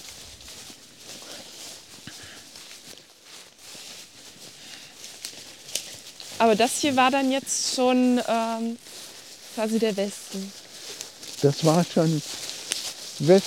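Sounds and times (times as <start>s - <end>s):
footsteps crunching dry wood and twigs in undergrowth off a patrol road: 0.0s - 13.4s
soft rustling hiss: 0.0s - 13.4s
speech: 6.4s - 9.0s, 9.6s - 10.6s, 11.4s - 12.4s, 13.2s - 13.4s.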